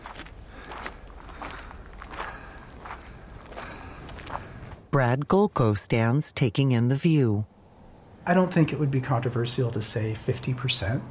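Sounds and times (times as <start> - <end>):
man's footsteps crunching up a gray trail: 0.0 - 4.9
speech: 5.0 - 7.5, 8.2 - 11.0.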